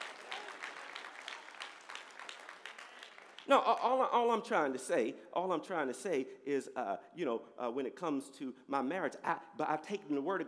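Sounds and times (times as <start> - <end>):
crowd applauding in praise of the Lord: 0.0 - 3.9
speech: 3.5 - 10.4.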